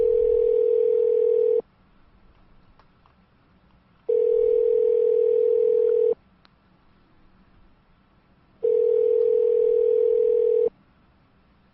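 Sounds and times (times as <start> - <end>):
telephone line buzzing tone: 0.0 - 1.6, 4.1 - 6.2, 8.6 - 10.7.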